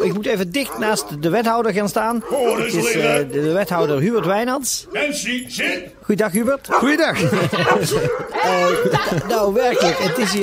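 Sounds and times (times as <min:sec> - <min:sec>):
hundreds of dogs barking and yipping: 0:00.0 - 0:10.4
speech: 0:00.1 - 0:10.4
man laughing: 0:06.8 - 0:10.4.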